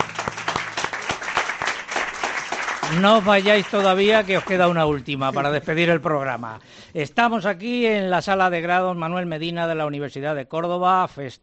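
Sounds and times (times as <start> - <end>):
audience applause at a university celebration event: 0.0 - 5.6
speech: 2.9 - 11.4.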